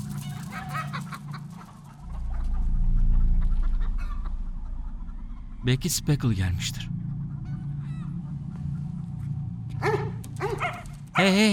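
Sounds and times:
steady low rumble: 0.0 - 11.5
speech: 5.6 - 7.0, 11.2 - 11.5
dog barking in short bright yelps: 9.8 - 10.9.

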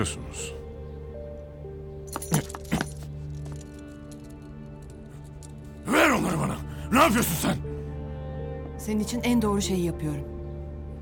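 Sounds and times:
speech: 0.0 - 0.6, 6.9 - 7.8, 8.8 - 10.4
keys jangling: 2.1 - 5.8.

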